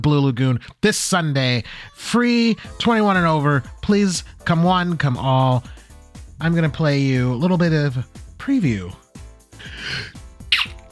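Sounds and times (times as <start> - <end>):
speech: 0.0 - 5.8, 6.4 - 9.0
sneeze with snorting follow-up: 10.0 - 10.9.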